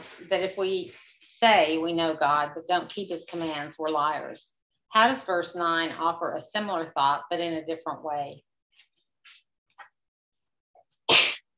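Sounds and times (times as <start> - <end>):
speech: 0.3 - 8.5
loud sneeze: 11.1 - 11.5.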